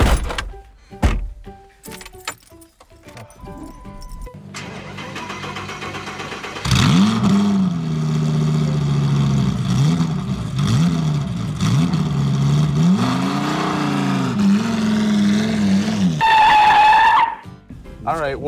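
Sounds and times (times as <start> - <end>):
car door thunks: 0.0 - 1.4
car engine starting up and driving off: 0.0 - 18.1.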